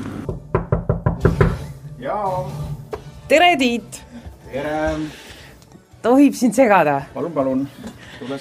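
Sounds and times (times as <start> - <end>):
sharp knocks on a wooden studio door: 0.2 - 1.7
speech: 2.0 - 5.2, 6.0 - 8.3.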